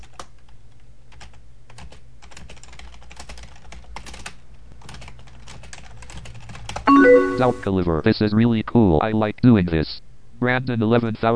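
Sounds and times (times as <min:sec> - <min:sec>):
typing on a computer keyboard: 0:00.0 - 0:06.9
speech: 0:07.4 - 0:11.3.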